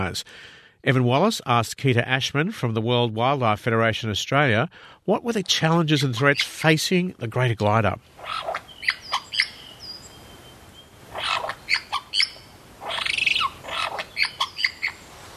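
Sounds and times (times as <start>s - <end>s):
speech: 0.0s - 9.0s
superb lyrebird calling with whistles, squawks and chattering: 6.0s - 6.7s, 8.1s - 15.3s.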